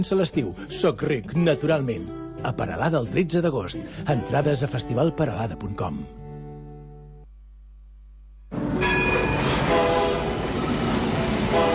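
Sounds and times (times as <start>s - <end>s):
speech: 0.0s - 6.2s
rack railway train rumbling: 8.6s - 11.7s.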